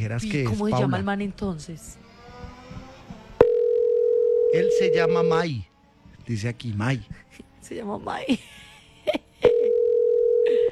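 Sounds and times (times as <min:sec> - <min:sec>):
speech: 0:00.0 - 0:02.0, 0:04.5 - 0:05.7, 0:06.3 - 0:09.2
telephone call ringing tone with nobody answering: 0:03.4 - 0:05.3, 0:09.4 - 0:10.7.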